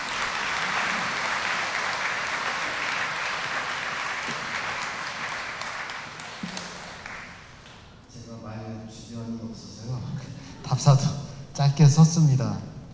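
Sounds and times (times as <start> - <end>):
crowd applause: 0.0 - 7.9
speech: 10.8 - 12.7.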